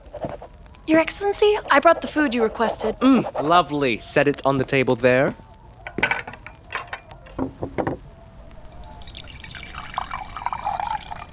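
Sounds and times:
speech: 0.9 - 5.4
wine pouring into a glass: 8.5 - 11.3
glassware and tableware clinking: 8.8 - 11.3.

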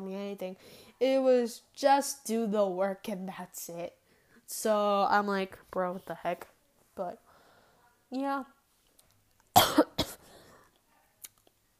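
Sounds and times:
speech: 0.4 - 7.2, 8.1 - 8.6
person coughing: 9.6 - 10.7.

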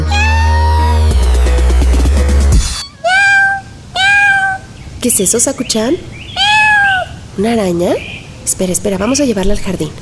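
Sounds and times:
male pet cat meowing: 0.0 - 1.3, 2.8 - 4.7, 6.4 - 7.2
music: 0.0 - 2.9
speech: 5.0 - 6.3, 7.4 - 10.0.

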